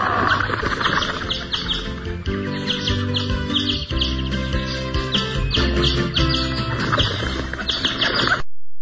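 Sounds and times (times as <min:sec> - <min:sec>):
birds set free from their cages chirping and tweeting: 0:00.0 - 0:08.4
birds' wings flapping: 0:00.1 - 0:02.0, 0:06.2 - 0:08.4
musical backing: 0:00.1 - 0:08.4.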